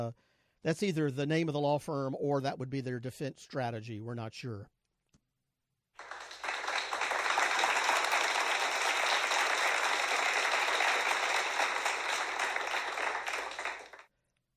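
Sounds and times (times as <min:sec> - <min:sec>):
speech: 0:00.0 - 0:04.8
crowd applauding: 0:06.0 - 0:14.1.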